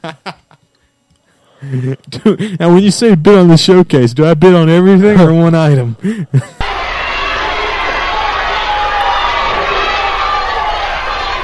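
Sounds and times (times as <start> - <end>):
speech: 0.0 - 0.4, 1.6 - 6.6
loud dense crowd yelling and shouting: 6.6 - 11.4.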